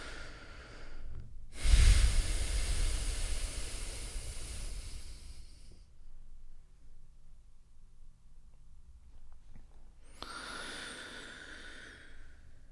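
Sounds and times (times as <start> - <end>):
forceful exhale while bending the upper body forward during a guided breathing exercise: 0.0 - 5.8, 10.2 - 12.4.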